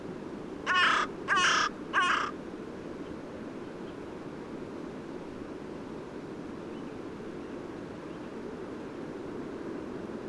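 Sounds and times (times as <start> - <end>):
Carrion crow giving raspy caws: 0.7 - 2.4.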